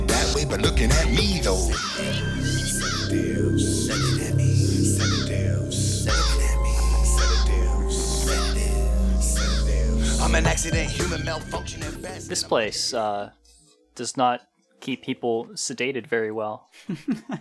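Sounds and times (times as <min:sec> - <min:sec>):
low sustained droning tone: 0:00.0 - 0:12.5
speech: 0:00.5 - 0:06.6, 0:10.2 - 0:13.4, 0:14.0 - 0:17.4
crows cawing: 0:02.7 - 0:10.5
laughter: 0:16.8 - 0:17.4.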